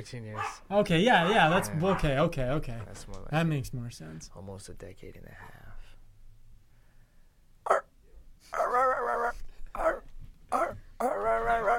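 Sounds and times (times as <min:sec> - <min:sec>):
speech: 0:00.0 - 0:05.6
dogs barking: 0:00.3 - 0:03.0, 0:07.6 - 0:11.7.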